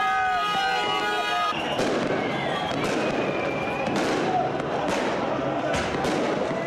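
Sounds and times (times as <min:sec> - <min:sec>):
crowd roaring and shouting celebrating a football win: 0:00.0 - 0:06.6
fireworks exploding in a busy outdoor street celebration: 0:00.4 - 0:06.6.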